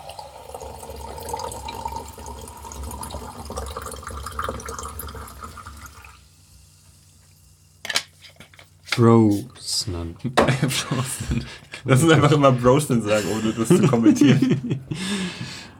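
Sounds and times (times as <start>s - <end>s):
sparkling water poured into a glass: 0.0s - 6.2s
faint fizzing hiss of sparkling water: 0.0s - 11.8s
speech: 9.0s - 15.3s
laughter: 10.3s - 15.6s.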